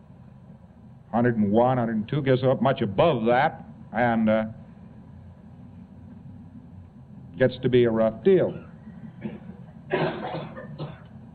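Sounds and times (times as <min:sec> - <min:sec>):
speech: 0:01.1 - 0:04.6, 0:07.4 - 0:08.7
person coughing during a medical examination: 0:09.2 - 0:11.1.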